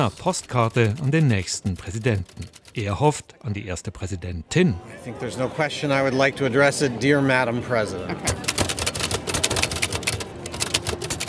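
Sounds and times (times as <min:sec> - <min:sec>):
old typewriter typing: 0:00.0 - 0:03.2, 0:08.3 - 0:11.2
speech: 0:00.0 - 0:08.6.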